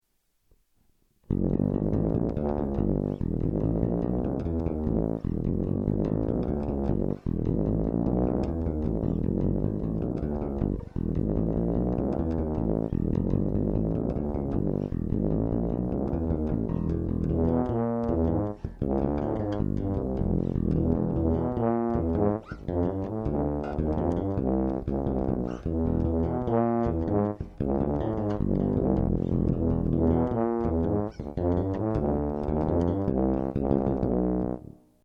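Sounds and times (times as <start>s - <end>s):
bass: 1.2s - 35.0s
trombone: 1.3s - 34.8s.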